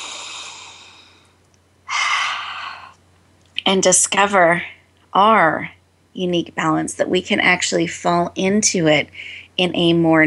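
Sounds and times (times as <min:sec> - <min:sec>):
deep breaths: 0:00.0 - 0:03.0
speech: 0:03.7 - 0:10.2.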